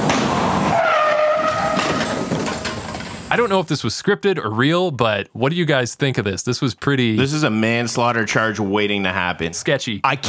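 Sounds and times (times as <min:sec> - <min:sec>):
truck braking hard with tyres skidding with a high squeal: 0:00.0 - 0:03.3
loud continuous rush of road noise: 0:00.0 - 0:03.6
speech: 0:03.4 - 0:10.2.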